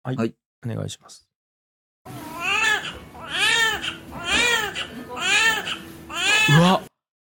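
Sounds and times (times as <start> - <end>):
speech: 0.1 - 1.3, 6.5 - 6.9
newborn baby's first cry at birth: 2.3 - 6.8.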